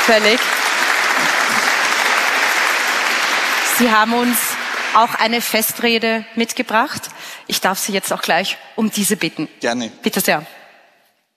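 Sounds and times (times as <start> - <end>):
audience applause at a festive ceremony: 0.0 - 5.7
speech: 0.1 - 0.7, 3.8 - 10.6.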